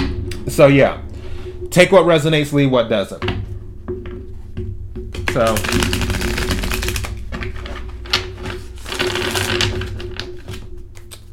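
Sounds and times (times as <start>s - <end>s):
steady low hum: 0.0s - 11.3s
speech: 0.5s - 1.1s, 1.7s - 3.4s, 5.3s - 6.0s
tarot cards being shuffled and drawn from a deck: 5.3s - 11.3s.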